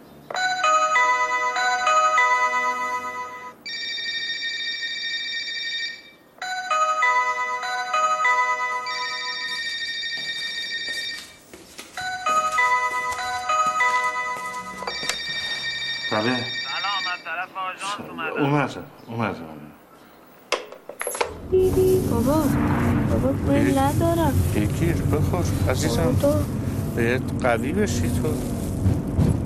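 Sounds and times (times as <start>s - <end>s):
bright electronic phone ringtone melody: 0.3s - 11.4s, 12.0s - 17.3s, 21.4s - 22.3s
speech: 16.2s - 16.5s, 18.4s - 19.6s, 21.7s - 29.3s.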